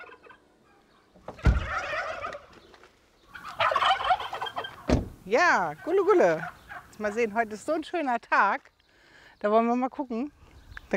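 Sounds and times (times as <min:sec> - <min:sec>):
turkeys gobbling in Köhlau, Lower Saxony, Germany: 0:00.0 - 0:07.3
speech: 0:05.3 - 0:08.7, 0:09.4 - 0:10.9.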